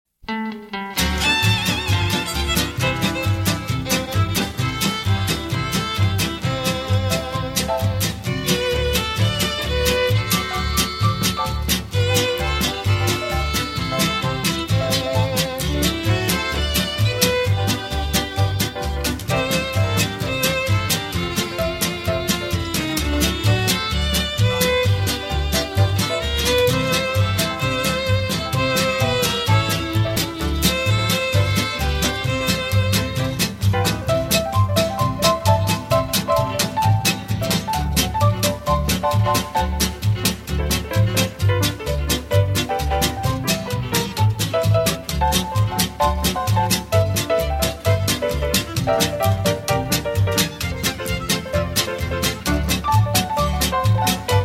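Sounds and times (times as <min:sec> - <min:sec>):
music: 0:00.2 - 0:54.4.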